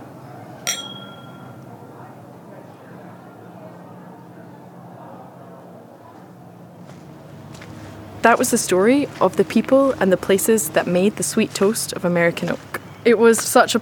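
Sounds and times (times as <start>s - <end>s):
glasses clinking in a toast: 0.7s - 1.6s
speech: 8.2s - 13.8s.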